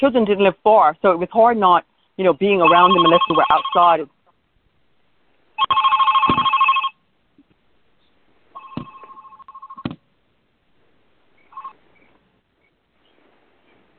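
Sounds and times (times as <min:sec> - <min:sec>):
speech: 0:00.0 - 0:04.2
telephone ringing with electronic trill: 0:02.6 - 0:04.0, 0:05.6 - 0:07.0, 0:08.5 - 0:09.8, 0:11.5 - 0:11.8.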